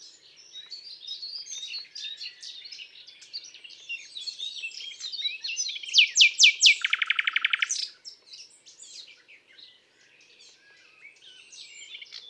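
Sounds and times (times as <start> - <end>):
common nightingale singing: 0.0 - 12.2.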